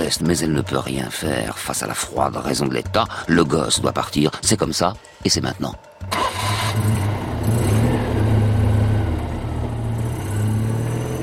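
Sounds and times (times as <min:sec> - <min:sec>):
speech: 0:00.1 - 0:07.0
car engine revving as car pulls away: 0:06.0 - 0:11.2.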